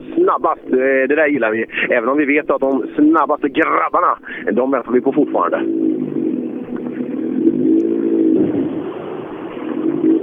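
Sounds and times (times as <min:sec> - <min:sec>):
speech: 0:00.3 - 0:06.1
rally car engine revving, shifting into first gear and pulling away: 0:05.6 - 0:10.2.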